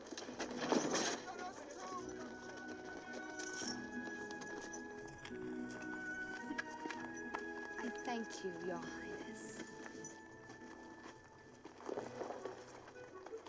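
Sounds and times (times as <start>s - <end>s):
busy outdoor bustle: 0.0s - 13.4s
horses' hooves clip-clopping: 0.0s - 13.4s
indistinct voices: 1.0s - 10.2s
speech: 8.2s - 9.2s.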